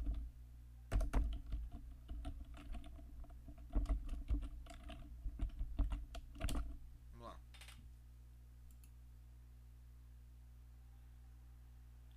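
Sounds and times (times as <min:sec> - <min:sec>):
typing on a computer keyboard: 0:00.0 - 0:00.3, 0:00.9 - 0:06.8.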